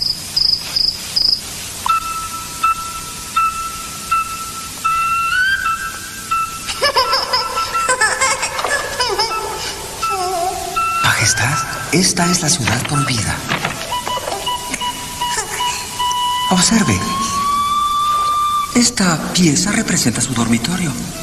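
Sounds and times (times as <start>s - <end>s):
pet cricket chirping in high-pitched trills: 0.0s - 21.2s
laughter: 6.7s - 16.0s
speech: 12.0s - 13.6s, 16.5s - 17.4s, 18.8s - 21.2s.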